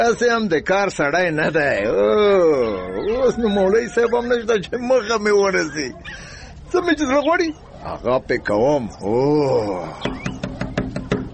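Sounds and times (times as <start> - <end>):
speech: 0.0 - 10.3
knuckles knocking on the wooden door of a village guest house: 10.0 - 11.3.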